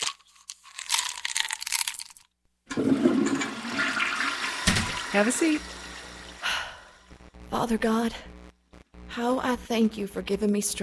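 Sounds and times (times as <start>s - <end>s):
toilet flushing: 2.7s - 6.4s
speech: 5.2s - 5.8s, 7.5s - 8.3s, 9.2s - 10.8s.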